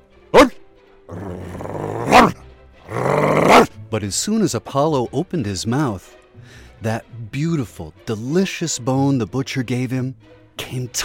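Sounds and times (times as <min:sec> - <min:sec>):
dog barking sharply: 0:00.4 - 0:00.6, 0:01.9 - 0:02.4, 0:03.3 - 0:03.7
dog growling: 0:01.1 - 0:03.7
speech: 0:03.9 - 0:11.0.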